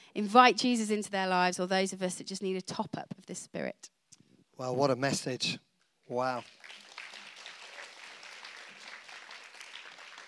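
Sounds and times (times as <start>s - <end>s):
speech: 0.2s - 4.0s, 4.6s - 6.8s
crowd clapping: 6.1s - 10.2s.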